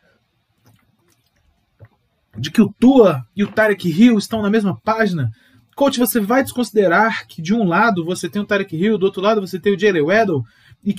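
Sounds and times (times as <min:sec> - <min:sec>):
person sipping water with slurps and a gulp: 0:00.5 - 0:02.4
speech: 0:02.4 - 0:10.9.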